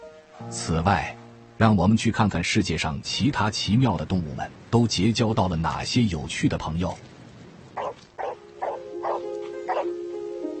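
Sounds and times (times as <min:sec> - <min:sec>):
speech: 0:00.4 - 0:07.1
dog barking: 0:07.8 - 0:09.9.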